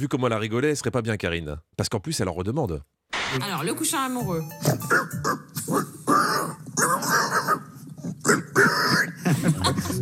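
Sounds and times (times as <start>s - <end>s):
speech: 0.0s - 7.4s, 8.3s - 10.0s
man imitating a pig squealing and grunting: 4.8s - 9.2s
laughter: 9.0s - 10.0s.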